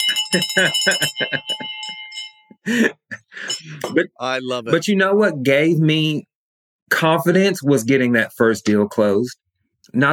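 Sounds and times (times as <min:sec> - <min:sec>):
victory bell ringing: 0:00.0 - 0:02.6, 0:03.4 - 0:04.0
speech: 0:00.1 - 0:02.0, 0:02.6 - 0:06.3, 0:06.9 - 0:10.1.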